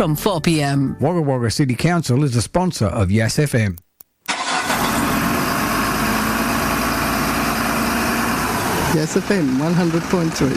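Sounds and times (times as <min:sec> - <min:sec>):
speech: 0:00.0 - 0:03.8, 0:08.9 - 0:10.5
truck engine cranking and catching: 0:04.3 - 0:10.5.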